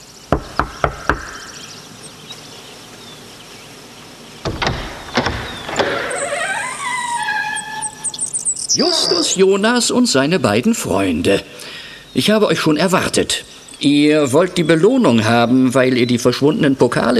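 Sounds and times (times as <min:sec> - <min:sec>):
speech: 0:00.3 - 0:00.5, 0:08.8 - 0:17.1
knocking on a door: 0:00.3 - 0:01.5, 0:04.4 - 0:06.0
clunks: 0:04.4 - 0:07.2
rising creaking whine: 0:04.4 - 0:08.8.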